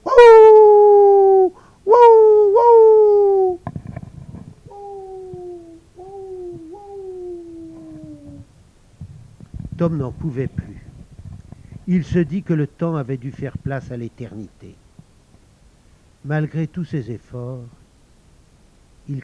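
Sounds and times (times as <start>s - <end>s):
dogs howling in long wavering cries: 0.0s - 3.6s, 4.8s - 8.4s
speech: 9.8s - 10.7s, 11.9s - 14.8s, 16.2s - 17.8s.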